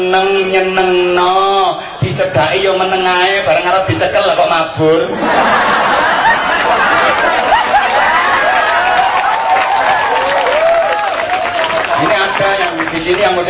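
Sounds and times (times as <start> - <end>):
speech: 0.0 - 1.4, 2.2 - 6.1
scattered laughter: 5.1 - 9.0
audience clapping: 6.2 - 13.4.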